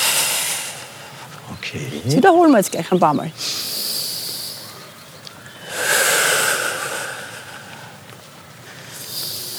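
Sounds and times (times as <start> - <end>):
longer louder airy exhale through the mouth while walking in a park: 0.0 - 1.3, 3.4 - 4.9, 5.5 - 8.0, 8.9 - 9.5
soft hissing inhale through the nose while walking in a park: 0.0 - 1.3, 3.4 - 8.0, 8.7 - 9.5
speech: 1.6 - 3.6.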